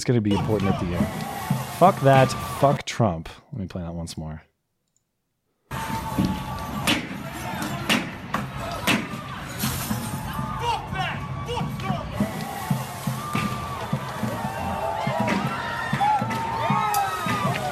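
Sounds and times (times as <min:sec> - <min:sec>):
crowd of protesters shouting and cheering: 0:00.0 - 0:02.8, 0:05.7 - 0:17.7
speech: 0:00.0 - 0:04.5
shop windows breaking as protesters smash them: 0:08.9 - 0:10.4.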